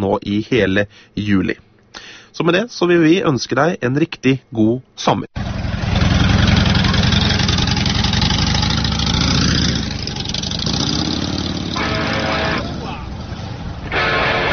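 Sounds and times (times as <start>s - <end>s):
speech: 0.0s - 5.5s
motorcycle engine idling: 5.4s - 13.9s.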